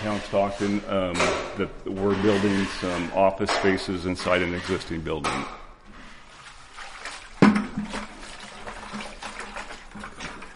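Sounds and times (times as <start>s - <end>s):
speech: 0.0s - 5.6s
water sloshing in a drywall mud bucket: 0.0s - 10.5s
water pouring into a bucket for mixing drywall mud: 6.1s - 10.5s.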